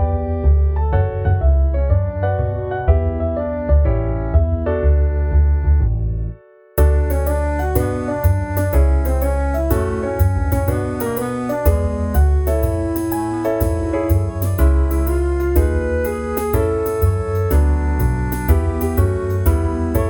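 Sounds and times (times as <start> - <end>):
1960s TV theme music: 0.1 - 20.0.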